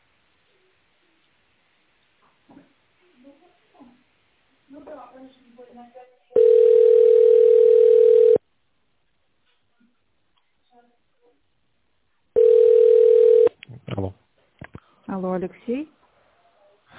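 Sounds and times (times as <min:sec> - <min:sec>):
speech: 0:04.7 - 0:06.2, 0:14.0 - 0:14.2, 0:15.1 - 0:16.0
telephone tone while a call is being connected: 0:06.4 - 0:08.4, 0:12.4 - 0:13.5.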